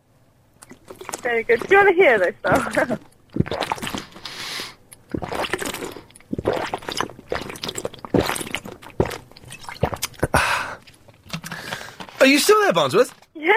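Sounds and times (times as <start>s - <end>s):
person drinking water in gulps: 0.6s - 11.8s
speech: 1.2s - 3.1s, 12.2s - 13.5s
breathing: 4.2s - 4.8s, 10.3s - 10.8s, 11.4s - 12.2s.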